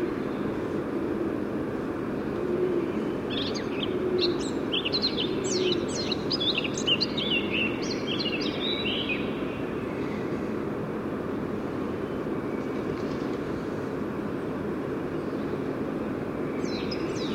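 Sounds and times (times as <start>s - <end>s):
low roaring hiss: 0.0s - 17.3s
Eurasian blackcap singing: 3.1s - 9.4s.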